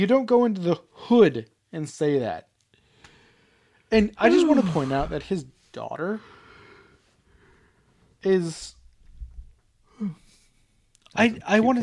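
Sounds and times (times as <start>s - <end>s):
speech: 0.0s - 2.5s, 3.9s - 6.3s, 8.2s - 8.8s, 10.0s - 10.2s, 11.2s - 11.8s
big yawn with voiced groan and breathy exhale: 4.3s - 5.2s.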